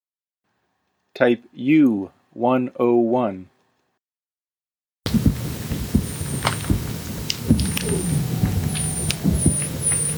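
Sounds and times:
speech: 0:01.2 - 0:03.5
low rumbles knocks and clicks: 0:05.1 - 0:10.1
Weddell seal ultrasonic whistles lowered in frequency in McMurdo Sound, Antarctica: 0:07.6 - 0:10.1.

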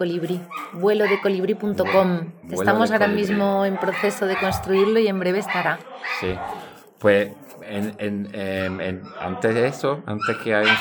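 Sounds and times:
speech: 0:00.0 - 0:10.7
several dogs yipping, whining and barking: 0:00.4 - 0:06.7, 0:08.5 - 0:09.4, 0:10.1 - 0:10.7.

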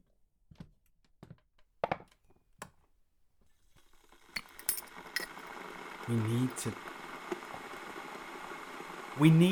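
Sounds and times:
electric kettle heating water for tea at a workplace: 0:03.7 - 0:09.5
cups and cutlery clinking: 0:04.4 - 0:05.4
person speaking: 0:06.0 - 0:06.8.

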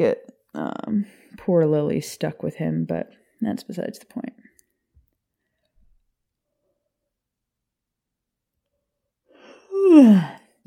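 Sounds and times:
speech: 0:00.0 - 0:04.4, 0:09.8 - 0:10.4
yawn with a breathy intake and drawn-out voiced groan: 0:09.4 - 0:10.6.

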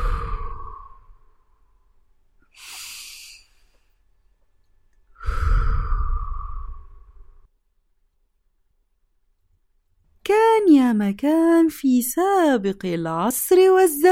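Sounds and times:
deep slow breathing during a relaxation exercise in bed: 0:00.0 - 0:04.2, 0:05.0 - 0:07.5
speech: 0:10.9 - 0:14.1.

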